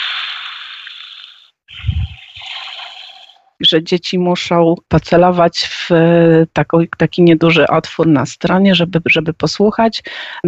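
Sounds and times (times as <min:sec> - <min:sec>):
tinny electronic sound book recording of rushing splashing water: 0:00.0 - 0:03.5
speech: 0:03.7 - 0:10.4.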